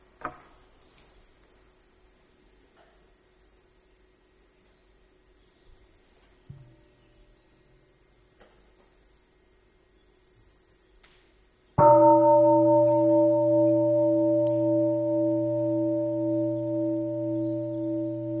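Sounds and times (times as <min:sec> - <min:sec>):
single struck mindfulness bell ringing: 0:11.8 - 0:18.3.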